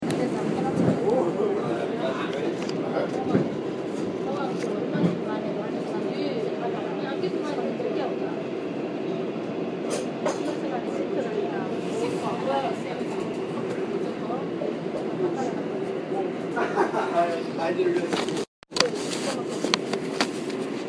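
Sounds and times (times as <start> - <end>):
subway: 0.0 - 20.8
laughter: 16.2 - 17.7.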